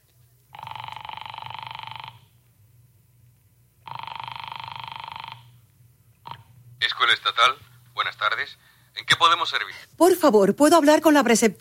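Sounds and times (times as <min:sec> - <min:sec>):
telephone ringing during a call: 0:00.5 - 0:02.3, 0:03.8 - 0:05.6
speech: 0:07.0 - 0:11.5.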